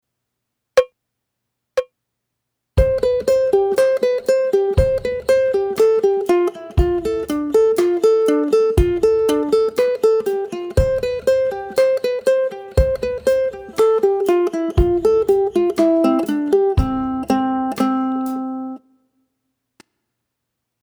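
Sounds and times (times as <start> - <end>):
fiddle tune: 2.8 - 18.8.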